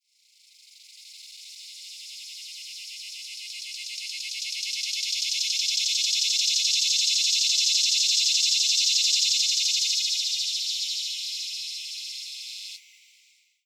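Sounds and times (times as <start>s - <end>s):
Neotibicen tibicen cicadas singing in the US: 3.5s - 12.8s.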